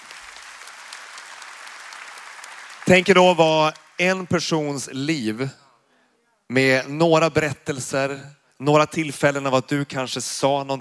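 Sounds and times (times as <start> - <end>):
audience applause at a Sunday club gathering: 0.0 - 4.4
speech: 2.9 - 5.6, 6.5 - 10.8.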